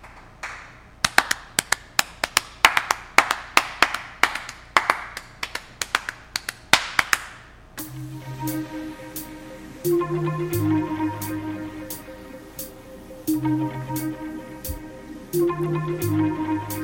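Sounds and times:
crisp handclaps in a patterned rhythm: 0.0s - 7.5s
soft musical wash: 7.8s - 16.8s.

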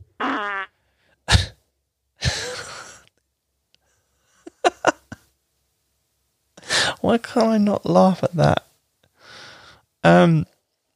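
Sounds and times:
small burp: 0.2s - 1.6s
speech: 7.0s - 8.7s, 10.0s - 10.5s.

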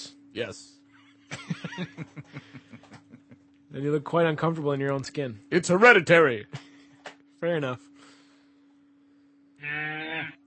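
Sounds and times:
faint constant hum: 0.0s - 10.4s
speech: 0.4s - 3.0s, 3.7s - 6.6s, 7.4s - 7.9s
laughter: 1.3s - 3.4s
cow mooing: 9.6s - 10.4s.

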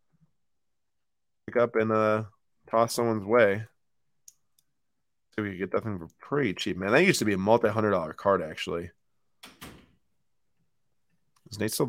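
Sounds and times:
speech: 1.5s - 3.7s, 5.4s - 9.6s, 11.5s - 11.8s
door closing: 9.4s - 10.0s.

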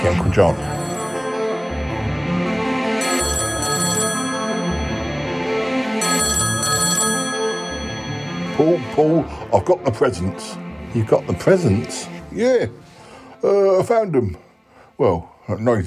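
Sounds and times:
speech: 0.0s - 0.8s, 8.6s - 12.8s, 13.4s - 14.4s, 15.0s - 15.8s
old-fashioned telephone bell ringing in a flat: 0.0s - 9.4s.

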